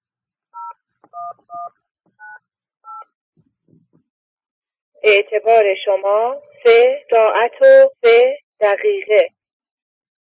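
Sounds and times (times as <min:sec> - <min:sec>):
touch-tone keypad beeps as a phone number is dialed: 0:00.6 - 0:03.1
speech: 0:05.0 - 0:09.4.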